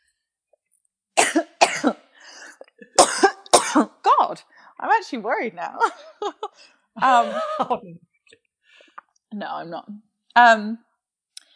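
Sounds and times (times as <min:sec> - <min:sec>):
harsh coughing from a tickle in the throat: 0:01.2 - 0:03.9, 0:07.0 - 0:07.8
speech: 0:03.8 - 0:08.1, 0:09.3 - 0:10.9
throat clearing from a tickle in the throat: 0:07.2 - 0:07.7.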